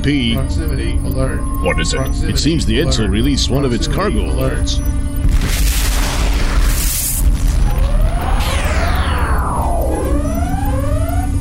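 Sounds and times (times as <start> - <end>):
speech: 0.0 - 5.7
loud rumbling methane-fueled explosion: 5.2 - 9.0
sweeping descending whooshes: 6.8 - 11.3.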